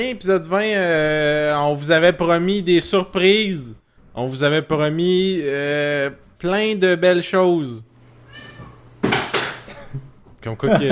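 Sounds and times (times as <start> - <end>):
speech: 0.0 - 7.9, 10.4 - 10.9
cat meowing to get into an office: 8.2 - 9.0.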